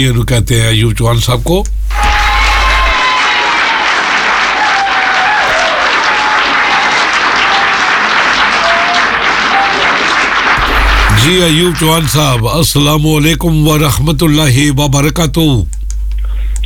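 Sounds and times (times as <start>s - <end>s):
speech: 0.0s - 2.1s, 11.2s - 15.7s
cheering: 1.9s - 12.4s
crowd applauding: 2.9s - 12.4s
faint whistle-like tones: 7.4s - 11.9s.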